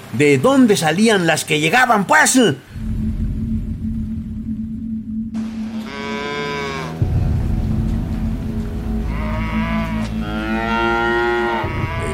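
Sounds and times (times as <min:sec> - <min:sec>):
speech: 0:00.1 - 0:02.9
low rumble: 0:02.6 - 0:05.9, 0:07.0 - 0:12.1
cattle bellowing in long drawn-out moos: 0:05.5 - 0:07.0, 0:09.0 - 0:12.1.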